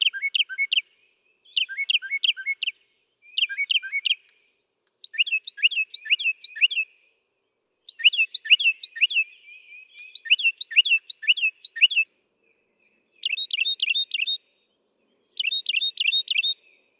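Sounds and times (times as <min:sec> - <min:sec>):
Northern mockingbird delivering long varied song: 0:00.0 - 0:00.8, 0:01.4 - 0:04.3, 0:05.0 - 0:06.9, 0:07.8 - 0:12.0, 0:13.2 - 0:14.4, 0:15.3 - 0:16.6.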